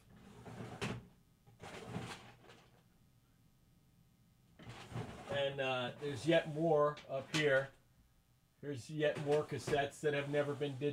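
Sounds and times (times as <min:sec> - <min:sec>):
drawers sliding open and shut with rattling scrapes: 0:00.0 - 0:02.8, 0:04.6 - 0:05.4, 0:06.1 - 0:07.7, 0:09.1 - 0:10.8
speech: 0:05.4 - 0:07.8, 0:08.6 - 0:10.9.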